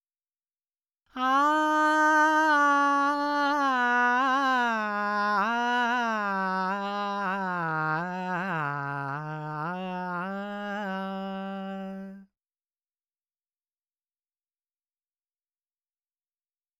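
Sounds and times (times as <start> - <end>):
dry male vocals: 1.2 - 12.3.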